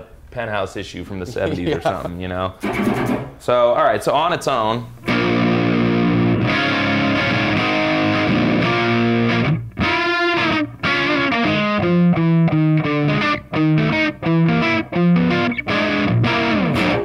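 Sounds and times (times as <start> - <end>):
speech: 0.3 - 5.0
laughter: 1.1 - 2.2
buzzy warm distorted electric guitar played loud and alone: 4.9 - 17.0.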